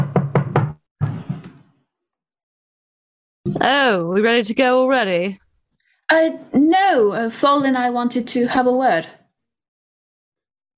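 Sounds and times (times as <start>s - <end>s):
firm knocks on a wooden door: 0.0s - 0.8s
speech: 3.5s - 5.4s, 6.1s - 9.2s.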